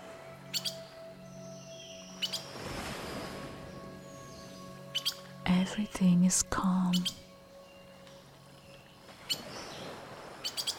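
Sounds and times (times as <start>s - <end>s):
birds chirping and singing: 0.4s - 5.4s, 6.6s - 10.7s
speech: 5.7s - 7.2s.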